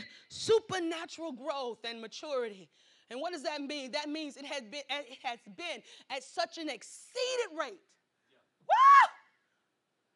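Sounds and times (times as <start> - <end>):
speech: 0.0 - 8.0
baby screaming: 8.7 - 9.2.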